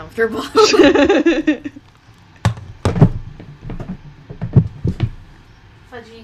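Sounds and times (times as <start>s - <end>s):
speech: 0.1s - 1.8s, 6.0s - 6.2s
laughter: 0.5s - 1.8s
handling noises: 0.9s - 5.5s
door being closed with dull thumps and knocks: 2.4s - 5.3s.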